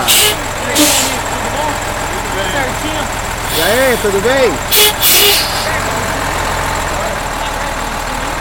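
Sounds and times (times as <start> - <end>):
fire truck engine idling and pulling away: 0.0 - 8.3
short bursts of hissing noise: 3.4 - 5.7
speech: 3.9 - 5.8
brief horn-like tone: 4.7 - 5.6.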